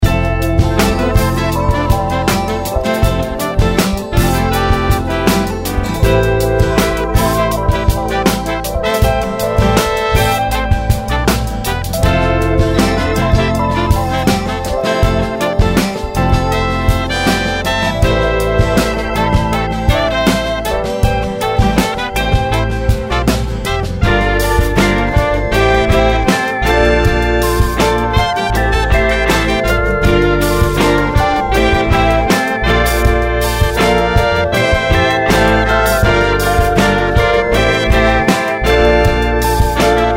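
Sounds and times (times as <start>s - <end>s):
sweet soul music: 0.0s - 40.1s.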